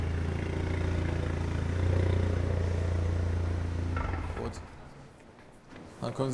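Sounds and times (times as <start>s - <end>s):
car engine humming while driving onto a vehicle lift: 0.0s - 5.3s
faint clunk and rattle: 3.3s - 6.0s
speech: 6.1s - 6.3s.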